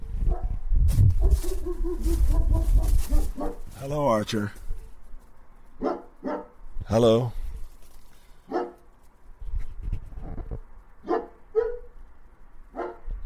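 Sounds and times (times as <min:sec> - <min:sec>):
dog barking excitedly at owner arriving home: 0:00.3 - 0:00.5, 0:01.2 - 0:03.7, 0:05.8 - 0:06.5, 0:08.5 - 0:08.9, 0:11.1 - 0:11.9, 0:12.7 - 0:13.1
speech: 0:03.9 - 0:04.6, 0:06.9 - 0:07.4.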